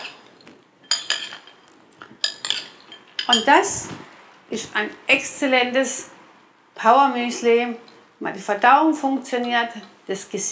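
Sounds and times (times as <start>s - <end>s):
spoon clinking against a bowl while muesli is mixed with nuts and coconut flakes: 0.8s - 3.5s
speech: 3.3s - 6.1s, 6.8s - 10.5s.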